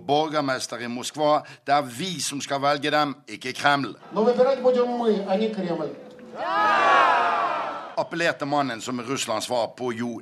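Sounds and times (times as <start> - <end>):
speech: 0.1 - 6.9, 8.0 - 10.2
large crowd cheering and shouting at a protest rally: 6.3 - 8.0.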